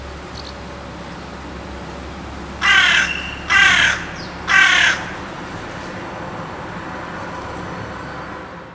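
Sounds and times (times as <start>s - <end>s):
carrion crow Corvus corone giving hoarse caws: 2.6s - 5.3s.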